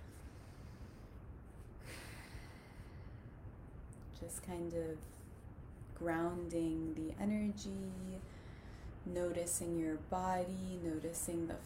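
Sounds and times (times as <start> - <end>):
quiet hiss: 0.0 - 11.6
slow deep breath during a guided meditation grounding exercise: 0.1 - 3.4
speech: 4.2 - 5.3, 6.0 - 8.4, 9.0 - 11.6.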